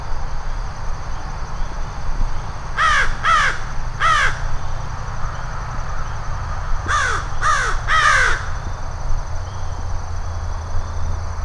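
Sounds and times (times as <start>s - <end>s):
constant low traffic rumble: 0.0s - 11.4s
two adult American crows calling from a tree at a lake sanctuary: 2.8s - 8.7s.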